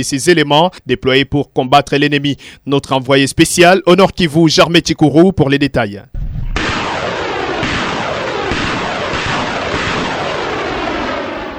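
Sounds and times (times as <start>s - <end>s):
speech: 0.0s - 6.2s
heavy booming blasts: 6.1s - 11.5s
heavy and light weapons gunfire during army fighting in North Kivu: 6.4s - 11.5s.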